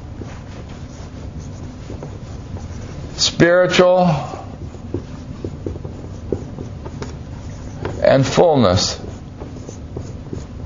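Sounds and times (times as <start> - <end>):
steady low hum: 0.0 - 10.6
marker or chalk writing a word on a board: 0.2 - 10.6
speech: 3.2 - 4.3, 8.1 - 9.0.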